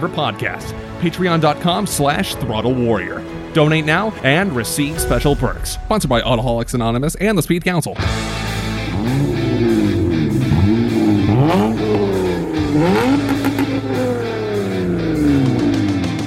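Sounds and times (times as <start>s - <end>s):
speech: 0.0s - 9.9s
Honda Accord V6 with 6-speed manual engine revving: 8.2s - 16.2s.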